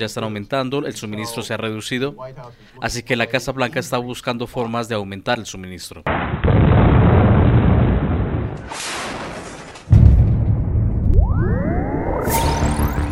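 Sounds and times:
speech: 0.0 - 6.8
sharp heavy boom: 6.1 - 8.6, 9.9 - 13.0
rumbling blasts of bombardment in the war of Russia's invasion of Ukraine: 6.1 - 9.2, 9.9 - 11.2
rising mechanical whine: 10.5 - 13.1.

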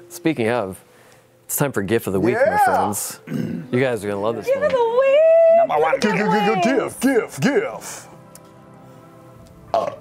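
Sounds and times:
speech: 0.1 - 0.9, 1.5 - 8.1
loud throaty gurgling burp: 3.3 - 3.7, 9.7 - 9.9.

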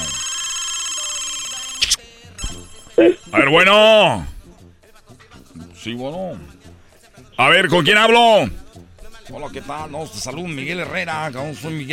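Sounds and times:
telephone ringing with electronic tone: 0.0 - 3.9
sharp clicks: 1.8 - 2.0
speech: 3.0 - 4.3, 5.8 - 6.6, 7.4 - 8.6, 9.3 - 11.9.

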